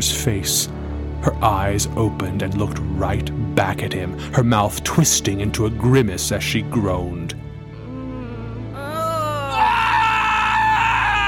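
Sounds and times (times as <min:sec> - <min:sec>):
speech: 0:00.0 - 0:07.5
man screaming in terror: 0:08.8 - 0:11.2.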